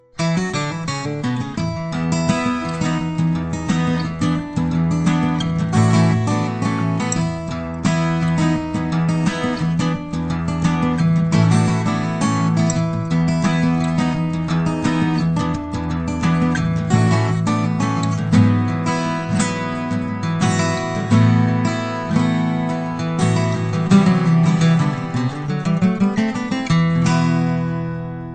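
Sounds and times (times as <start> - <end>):
acoustic blues music: 0.0 - 28.3.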